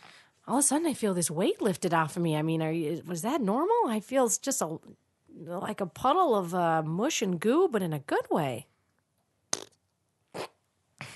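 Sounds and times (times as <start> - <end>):
speech: 0.5 - 8.7
short sputtering fart noises: 9.5 - 11.1.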